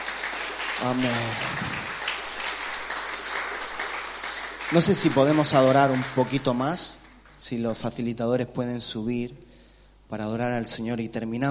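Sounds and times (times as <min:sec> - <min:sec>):
applause from a church congregation: 0:00.0 - 0:07.5
speech: 0:00.8 - 0:01.7, 0:04.7 - 0:09.5, 0:10.1 - 0:11.4.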